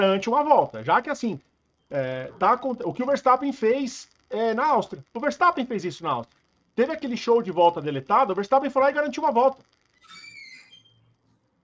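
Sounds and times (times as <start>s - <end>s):
speech: 0.0s - 10.2s
low hum: 0.0s - 11.6s
door creaking open: 9.9s - 11.2s
squeaky door hinge whine: 9.9s - 11.2s.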